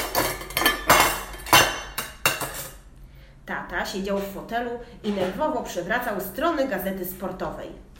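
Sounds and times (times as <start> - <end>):
metal pots and pans clattering and clanging in a kitchen: 0.0 - 2.8
speech: 3.8 - 7.9.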